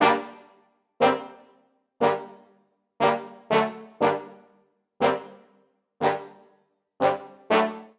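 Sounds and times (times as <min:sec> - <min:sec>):
brass quartet ostinato in G minor: 0:00.0 - 0:06.4, 0:07.0 - 0:07.9.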